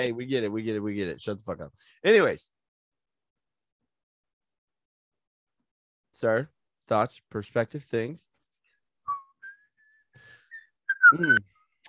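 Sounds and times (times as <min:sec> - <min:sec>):
speech: 0:00.0 - 0:02.6, 0:06.2 - 0:08.3, 0:11.1 - 0:11.8
person whistling a short wavering tune: 0:09.1 - 0:11.4.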